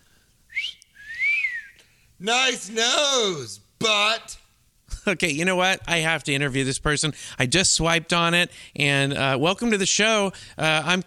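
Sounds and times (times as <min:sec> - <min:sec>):
person whistling two clear notes: 0:00.5 - 0:01.9
speech: 0:02.2 - 0:04.4, 0:05.0 - 0:11.0.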